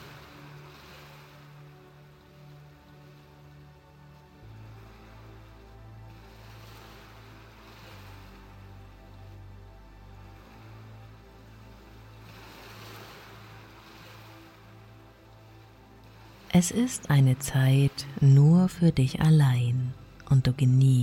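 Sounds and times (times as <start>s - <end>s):
waves washing onto shore: 0.0s - 20.4s
low droning tone: 4.4s - 21.0s
speech: 16.5s - 21.0s.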